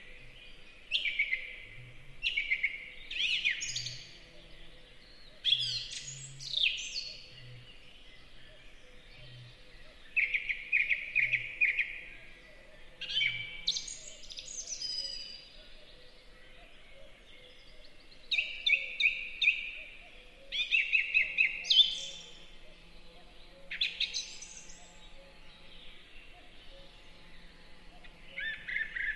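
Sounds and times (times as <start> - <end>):
song thrush singing in spring forest: 0.0 - 29.1.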